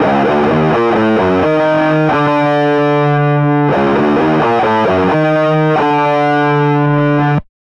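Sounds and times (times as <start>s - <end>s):
mono rock guitar playing: 0.0s - 7.4s.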